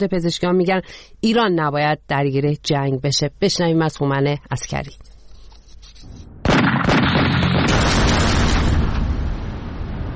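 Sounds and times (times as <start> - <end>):
speech: 0.0 - 5.1
huge explosion boom: 6.3 - 10.1
rumbling blasts: 6.3 - 10.1.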